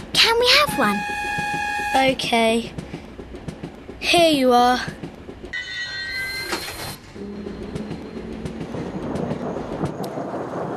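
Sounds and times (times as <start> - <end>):
train rumbling on rails: 0.0 - 10.7
speech: 0.2 - 1.3, 1.9 - 2.8, 4.0 - 5.0
train wheels clattering and clicking: 1.4 - 5.6, 6.4 - 10.7.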